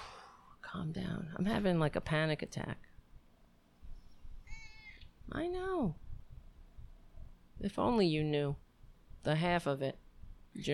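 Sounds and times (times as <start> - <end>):
speech: 0.7 - 2.9, 5.3 - 6.0, 7.6 - 8.6, 9.2 - 10.0
faint thin squeak: 4.0 - 5.1
cat short high meow: 4.4 - 5.1.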